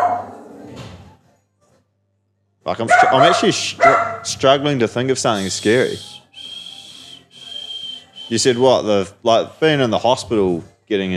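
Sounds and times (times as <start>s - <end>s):
dog barking: 0.0s - 0.4s, 2.8s - 4.3s
speech: 2.6s - 6.2s, 8.3s - 11.1s.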